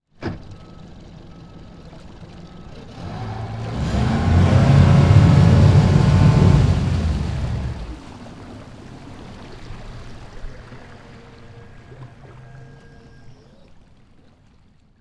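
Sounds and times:
power boat engine starting: 0.5 - 8.3.

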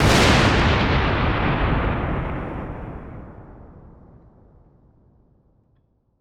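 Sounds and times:
lightning bolt crash crack in a storm: 0.0 - 4.9.

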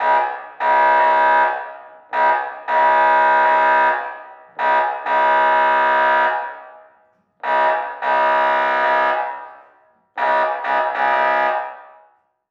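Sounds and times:
docked emergency patrol boat air horn: 0.0 - 1.6, 2.2 - 6.6, 7.4 - 9.6, 10.2 - 11.8.

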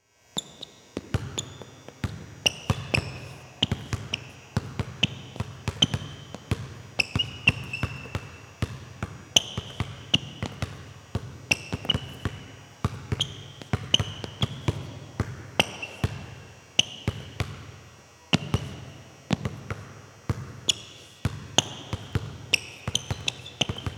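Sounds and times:
shoe squeaks: 0.4 - 8.6, 9.3 - 10.6, 11.4 - 14.9, 15.6 - 17.4, 20.6 - 23.9
basketball dribbling: 0.4 - 23.9.

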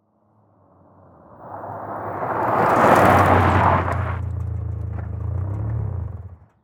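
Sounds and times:
Saturn car pulling up fast and stopping on a dirt road: 1.4 - 6.6.

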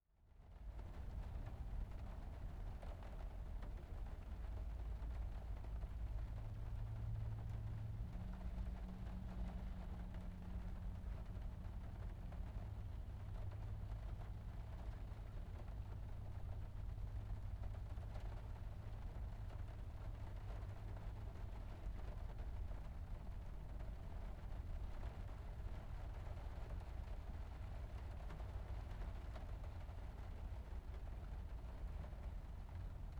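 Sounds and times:
rain heard from inside a car: 0.2 - 33.1.

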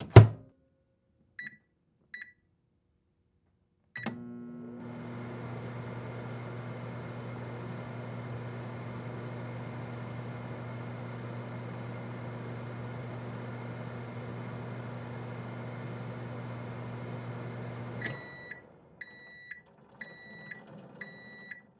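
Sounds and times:
household microwave door closing: 0.0 - 0.4
household microwave switching on: 4.0 - 21.7.

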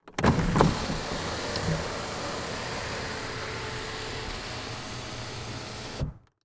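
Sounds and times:
Chevy Trailblazer sunroof opening: 0.1 - 6.3.

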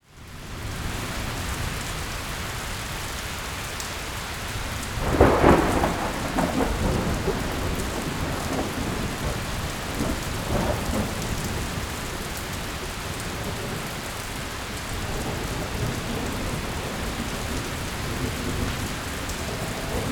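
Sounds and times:
rain: 0.0 - 20.0
thunder: 5.0 - 13.9, 15.0 - 20.0.

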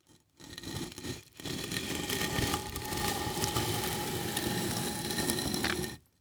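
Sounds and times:
brick impact and slow drag through rock salt: 1.4 - 6.0.

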